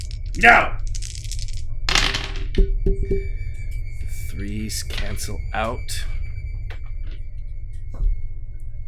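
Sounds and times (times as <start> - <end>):
dice rattling: 0.0 - 3.0
low steady hum: 0.0 - 8.8
speech: 0.4 - 0.8, 4.6 - 6.2.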